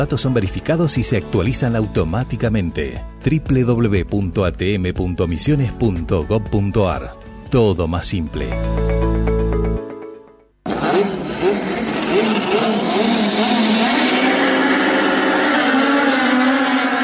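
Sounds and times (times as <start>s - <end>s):
speech: 0.0s - 9.2s
touring car engines revving and roaring in a national touring car race: 10.7s - 17.0s.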